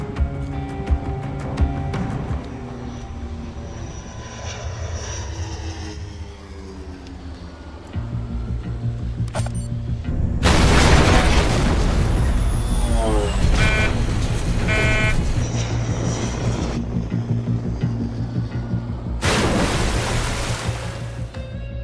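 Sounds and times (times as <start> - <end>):
low steady drone: 0.0 - 11.5, 12.1 - 21.8
Semtex plastic explosive detonating: 10.4 - 14.2, 19.2 - 21.1
scattered crackling debris from an explosion: 10.4 - 14.7.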